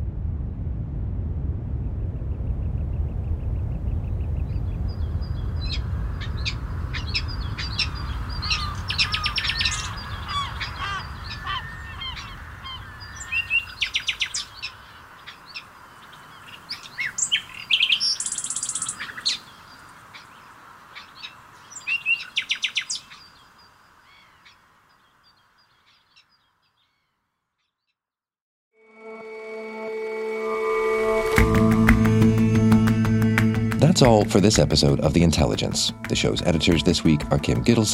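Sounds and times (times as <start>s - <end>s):
low rumble: 0.0s - 13.9s, 30.6s - 37.7s
birds chirping and calling: 4.4s - 27.1s
speech: 34.0s - 37.9s.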